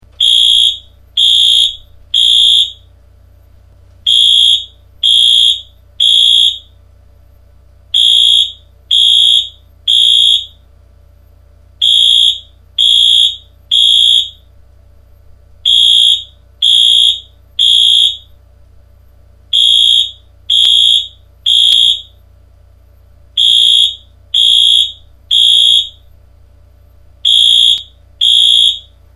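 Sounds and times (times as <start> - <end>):
fire alarm horn sounding code three pattern: 0.2 - 2.9, 4.0 - 6.7, 7.9 - 10.6, 11.8 - 14.5, 15.6 - 18.4, 19.5 - 22.2, 23.4 - 26.1, 27.2 - 29.1.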